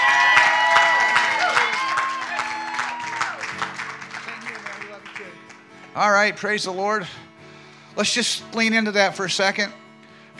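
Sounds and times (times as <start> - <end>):
audience clapping in praise of God: 0.0 - 6.0
held musical tone: 1.8 - 10.3
speech: 6.0 - 7.2, 8.0 - 9.8.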